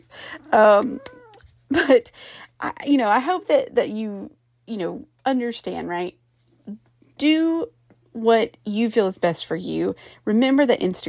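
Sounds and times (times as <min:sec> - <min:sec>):
speech: 0:00.0 - 0:11.0
cat meowing: 0:00.8 - 0:01.5.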